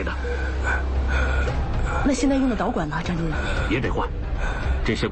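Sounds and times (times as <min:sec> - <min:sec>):
rapid labored breathing of an intubated patient: 0:00.2 - 0:02.3, 0:03.1 - 0:04.9.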